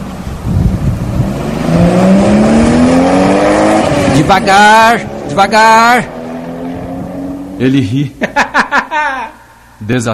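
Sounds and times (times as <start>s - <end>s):
car pulling away and accelerating hard: 0.0s - 8.0s
speech: 4.3s - 6.1s, 7.6s - 8.4s, 9.0s - 10.1s
laughter: 8.2s - 9.5s.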